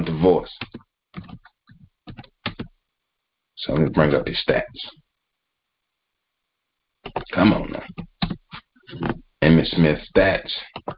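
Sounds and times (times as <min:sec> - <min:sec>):
speech: 0:00.2 - 0:00.7, 0:03.6 - 0:05.0, 0:07.1 - 0:08.1, 0:08.9 - 0:10.9
computer keyboard typing a search: 0:00.6 - 0:02.7, 0:07.0 - 0:09.2.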